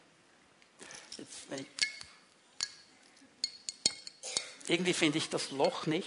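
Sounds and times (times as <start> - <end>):
metal keys on a keyring clinking against a glass wine bottle: 0.8 - 4.5
speech: 1.2 - 1.8, 4.7 - 6.0.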